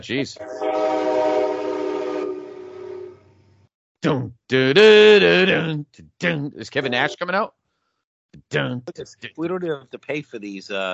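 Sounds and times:
speech: 0.0s - 1.2s, 4.0s - 7.6s, 8.3s - 10.9s
train horn blaring: 0.4s - 3.4s.

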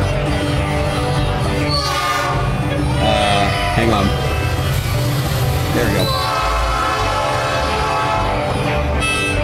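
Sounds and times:
train rail cars rumbling: 0.0s - 9.4s
train horn: 1.7s - 4.1s, 5.8s - 9.4s.

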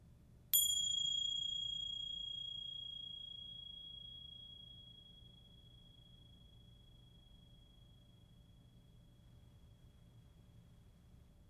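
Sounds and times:
faint low hum: 0.0s - 11.4s
bright bell strike: 0.6s - 5.4s.

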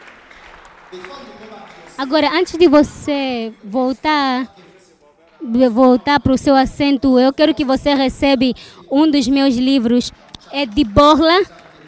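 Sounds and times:
audience clapping in praise: 0.0s - 3.3s, 10.2s - 11.8s
speech: 0.9s - 4.7s, 5.4s - 11.8s.

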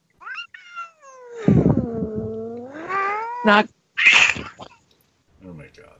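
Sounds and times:
cats yowling and caterwauling while fighting: 0.2s - 4.7s
speech: 3.4s - 4.6s.

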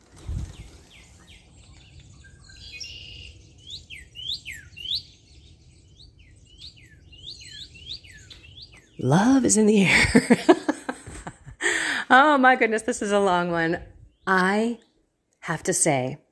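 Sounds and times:
many birds chirping and squawking: 0.2s - 10.2s
speech: 9.0s - 10.7s, 12.1s - 16.2s
laughter: 9.9s - 12.0s.

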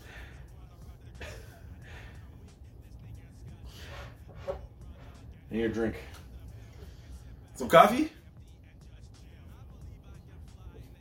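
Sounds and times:
heavy rhythmic breathing after exertion: 0.0s - 2.6s, 3.5s - 5.3s, 6.0s - 7.5s
speech: 5.5s - 6.2s, 7.6s - 8.2s.

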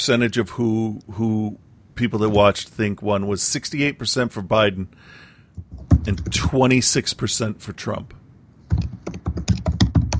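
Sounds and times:
speech: 0.0s - 8.9s
loud clacking of computer keyboard keys: 8.7s - 10.1s.

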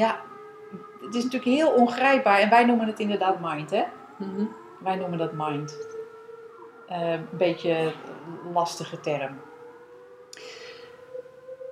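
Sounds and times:
speech: 0.0s - 6.0s, 6.9s - 9.5s
civil defense warning siren droning: 0.0s - 11.7s.

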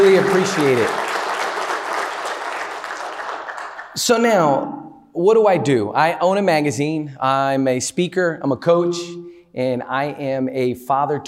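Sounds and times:
audience applause: 0.0s - 4.0s
speech: 0.2s - 1.1s, 4.0s - 11.2s.

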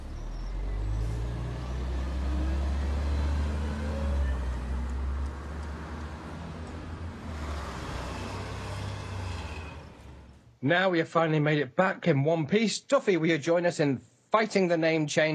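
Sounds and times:
bus engine with steady low drone: 0.0s - 10.6s
speech: 10.6s - 15.3s.

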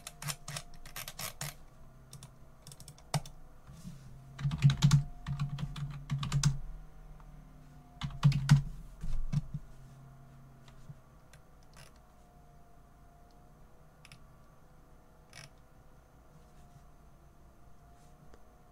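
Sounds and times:
typing on a computer keyboard: 0.0s - 3.4s, 4.4s - 6.6s, 8.0s - 8.6s
low steady hum: 0.0s - 18.7s.

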